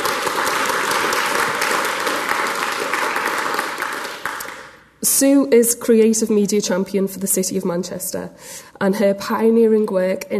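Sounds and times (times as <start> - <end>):
large audience applauding: 0.0 - 4.9
speech: 5.0 - 10.3.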